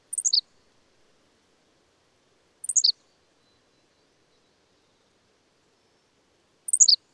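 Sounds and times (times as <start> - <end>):
bird twittering: 0.2 - 0.4, 2.7 - 2.9, 6.7 - 7.0.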